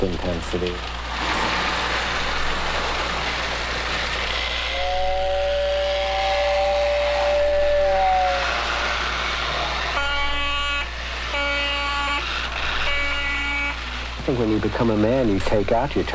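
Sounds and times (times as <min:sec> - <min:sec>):
speech: 0:00.0 - 0:01.3, 0:14.3 - 0:16.1
model train rumbling: 0:00.0 - 0:16.1
model train whistle: 0:04.0 - 0:14.1.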